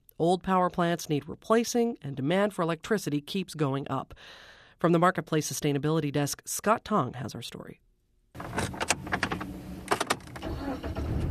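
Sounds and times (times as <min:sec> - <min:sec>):
speech: 0:00.2 - 0:07.8
car door clunks: 0:08.4 - 0:10.4
car engine starting and running north of the Washington Beltway: 0:08.4 - 0:11.2.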